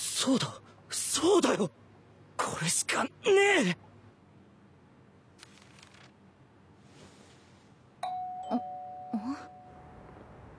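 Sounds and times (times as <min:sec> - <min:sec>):
speech: 0:00.2 - 0:01.8, 0:02.4 - 0:03.9
electronic intercom doorbell chiming: 0:08.0 - 0:09.8.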